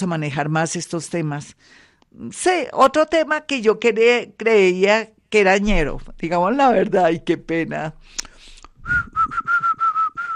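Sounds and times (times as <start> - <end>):
speech: 0.0 - 9.6
person whistling a high level note in short bursts: 8.8 - 10.3.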